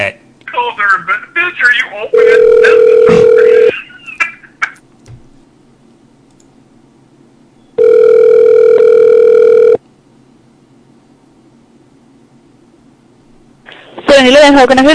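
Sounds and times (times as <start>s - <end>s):
speech: 1.0s - 3.4s, 14.5s - 14.9s
phone line ringing out with electronic ring tones: 2.1s - 3.8s, 7.8s - 9.8s
soft clicks on a phone line: 6.2s - 6.6s.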